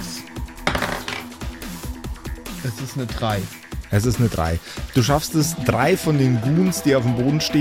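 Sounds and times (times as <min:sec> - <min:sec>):
six-sided die rattling across a hard surface: 0:00.6 - 0:01.4
speech: 0:02.6 - 0:07.6.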